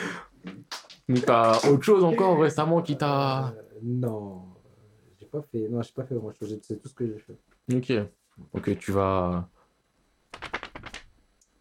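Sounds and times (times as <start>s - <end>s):
speech: 1.1s - 4.5s, 5.3s - 9.6s
sheet of paper rustling: 10.3s - 11.1s.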